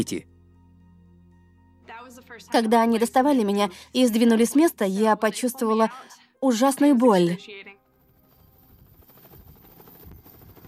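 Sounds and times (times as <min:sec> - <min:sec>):
speech: 0:00.0 - 0:00.3, 0:02.1 - 0:07.8
helicopter rotor and engine flying overhead: 0:05.6 - 0:10.6.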